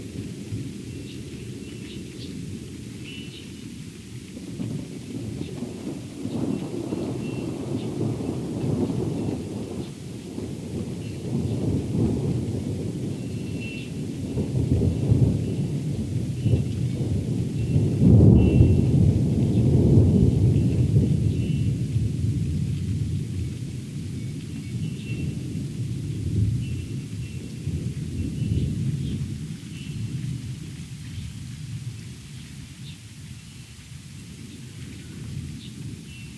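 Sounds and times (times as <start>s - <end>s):
steady rain hissing: 0.0s - 36.3s
low thunder rumbling during a thunderstorm: 4.4s - 32.0s.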